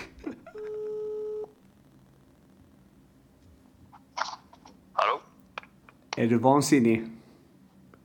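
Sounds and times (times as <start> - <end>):
low quiet hiss: 0.4 - 3.9
electronic telephone tone as a call is placed: 0.5 - 1.6
speech: 6.2 - 7.2.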